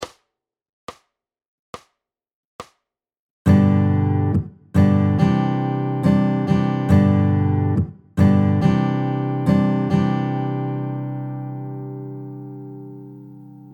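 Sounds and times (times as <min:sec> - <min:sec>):
guitar strumming in varying patterns: 0:03.5 - 0:13.7.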